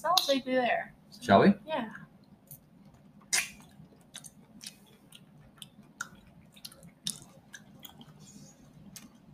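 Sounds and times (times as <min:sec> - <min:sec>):
low steady hum: 0:00.0 - 0:09.3
speech: 0:00.3 - 0:02.0
person biting into and chewing syrupy fruit: 0:02.3 - 0:09.3.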